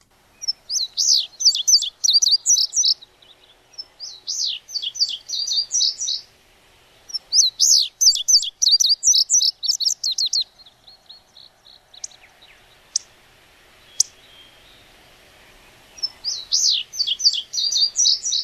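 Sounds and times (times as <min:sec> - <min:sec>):
Indigo Bunting song: 0:00.0 - 0:18.4.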